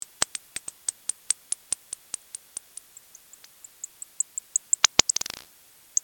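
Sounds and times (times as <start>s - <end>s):
Nathusius's pipistrelle bat calls: 2.6s - 6.0s.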